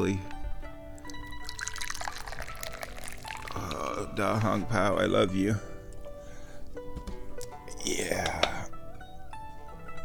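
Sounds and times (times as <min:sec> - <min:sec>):
speech: 0:00.0 - 0:00.3, 0:04.0 - 0:05.7, 0:07.8 - 0:08.5
tea poured into a cup: 0:01.0 - 0:04.6.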